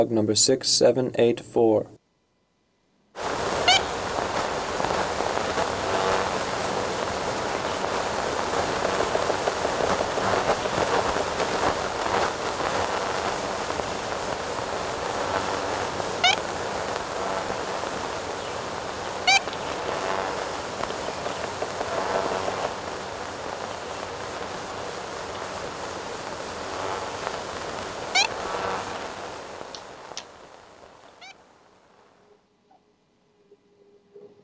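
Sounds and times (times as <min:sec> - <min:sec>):
hiss of old-recording noise from 1935 field recording: 0:00.0 - 0:02.0, 0:02.9 - 0:34.4
speech: 0:00.0 - 0:02.0
faint outdoor background: 0:00.0 - 0:34.4
Ivory-billed woodpecker nasal horn-like toots: 0:19.3 - 0:19.7.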